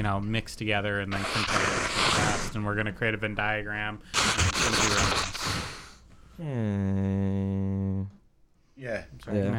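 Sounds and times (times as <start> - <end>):
speech: 0.0 - 5.8, 6.4 - 8.2, 8.8 - 9.5
person blowing their nose: 1.1 - 2.6, 4.1 - 6.1.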